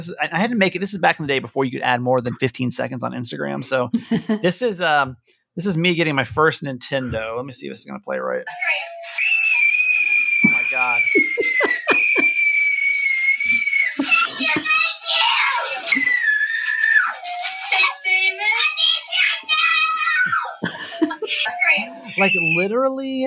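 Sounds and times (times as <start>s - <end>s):
speech: 0.0s - 9.0s, 22.2s - 23.2s
voices chattering: 0.9s - 2.7s, 5.9s - 7.6s, 8.5s - 23.2s
laughter: 4.0s - 4.5s, 10.4s - 12.5s, 13.4s - 17.8s, 20.2s - 22.6s
child shrieking excitedly with giggles and squeals: 8.5s - 22.6s.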